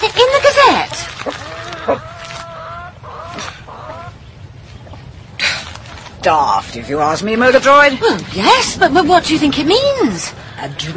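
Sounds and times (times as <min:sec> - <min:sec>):
hens clucking in a hen house: 0:00.0 - 0:05.2, 0:05.8 - 0:10.9
low rumble and rustle: 0:00.0 - 0:10.9
speech: 0:06.3 - 0:10.9.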